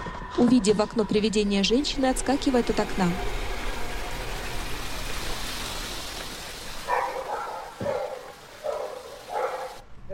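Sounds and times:
speech: 0.3s - 3.5s
dog barking: 6.9s - 10.1s.

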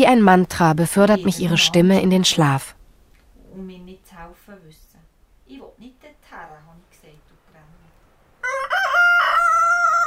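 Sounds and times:
speech: 0.0s - 2.8s
white rooster crowing at an alp hut in Graubünden, Switzerland: 8.4s - 10.0s.

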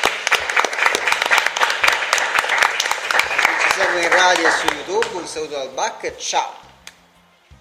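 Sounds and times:
small group clapping at a dinner gathering: 0.0s - 5.5s
speech: 3.9s - 6.7s.

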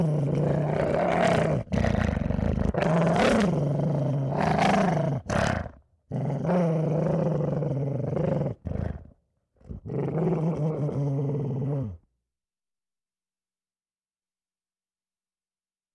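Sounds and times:
dog growling viciously: 0.0s - 12.1s.

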